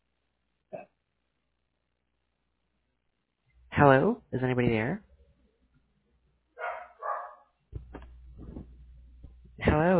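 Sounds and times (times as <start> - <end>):
speech: 3.8 - 5.1
dog barking: 6.6 - 7.6
low rumbling: 7.8 - 9.6.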